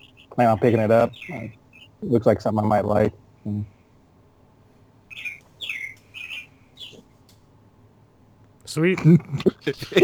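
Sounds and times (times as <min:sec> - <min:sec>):
bird chirping with bright high-pitched notes: 0:00.0 - 0:02.1, 0:05.1 - 0:07.2
faint low hum: 0:00.0 - 0:10.0
speech: 0:00.4 - 0:03.8, 0:08.7 - 0:10.0.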